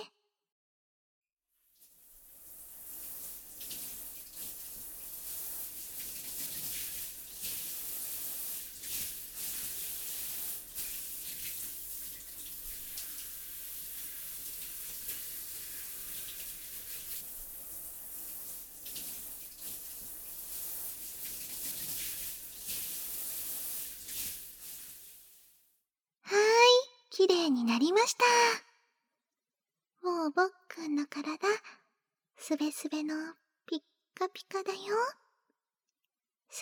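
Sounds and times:
water spraying as soap lather is rinsed away: 0:02.1 - 0:25.6
speech: 0:27.2 - 0:28.6, 0:30.4 - 0:31.7, 0:32.5 - 0:35.2.

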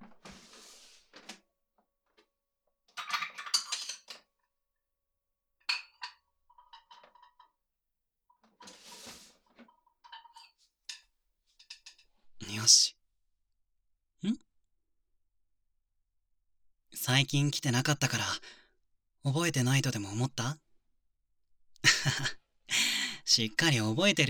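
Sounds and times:
dishes and utensils clinking being lifted and set down: 0:03.0 - 0:04.2, 0:05.7 - 0:07.5, 0:10.0 - 0:11.1
speech: 0:12.7 - 0:12.9, 0:17.2 - 0:18.6, 0:19.2 - 0:20.6, 0:22.0 - 0:22.4, 0:23.3 - 0:24.2.

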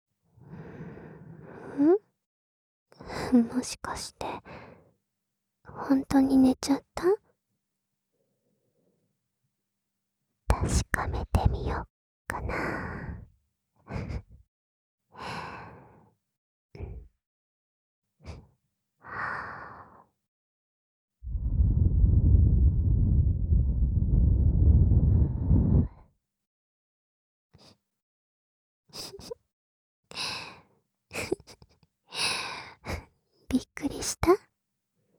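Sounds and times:
speech: 0:01.8 - 0:02.0, 0:03.3 - 0:04.3, 0:05.9 - 0:07.2, 0:10.6 - 0:13.0, 0:13.9 - 0:14.2, 0:33.5 - 0:34.5
breath blown softly into a microphone: 0:21.2 - 0:26.0.

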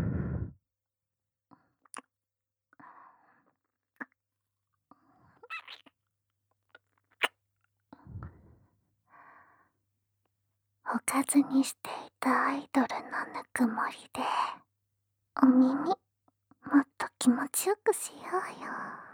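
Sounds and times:
soft warm exhalations breathed close to the ear: 0:00.0 - 0:00.6
small wet mouth clicks: 0:05.5 - 0:05.9
speech: 0:11.1 - 0:14.5, 0:15.4 - 0:16.0, 0:17.2 - 0:19.0.

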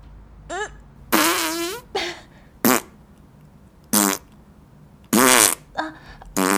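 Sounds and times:
farts: 0:00.5 - 0:01.9, 0:02.6 - 0:02.9, 0:03.9 - 0:04.3, 0:05.1 - 0:06.5.

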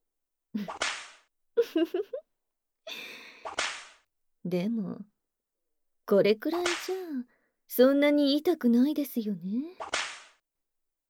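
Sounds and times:
speech: 0:00.6 - 0:00.8, 0:01.6 - 0:02.2, 0:04.4 - 0:05.1, 0:06.1 - 0:10.0
whip lashing against a man's body: 0:00.7 - 0:01.2, 0:03.5 - 0:04.0, 0:09.8 - 0:10.4.

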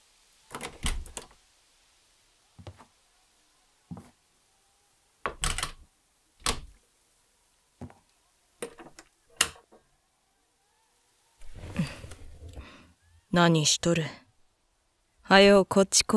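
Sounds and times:
door creaking open: 0:00.5 - 0:01.3, 0:05.3 - 0:05.8, 0:11.4 - 0:12.8
door lock clicks and knocks: 0:00.5 - 0:01.3, 0:05.3 - 0:05.8, 0:06.4 - 0:06.8, 0:08.6 - 0:09.7
door shutting: 0:00.5 - 0:01.3, 0:05.3 - 0:05.8, 0:06.4 - 0:06.8, 0:11.4 - 0:12.8
speech: 0:13.3 - 0:14.2, 0:15.3 - 0:16.1.

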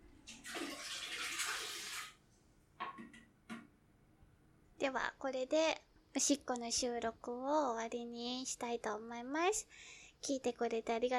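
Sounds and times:
toilet flushing: 0:00.2 - 0:02.2
speech: 0:04.8 - 0:11.1.

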